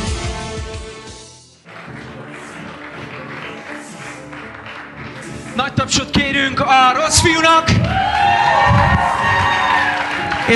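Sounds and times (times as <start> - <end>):
crowd cheering and clapping: 1.6 - 10.5
speech: 5.6 - 9.6
shouts: 6.5 - 10.5.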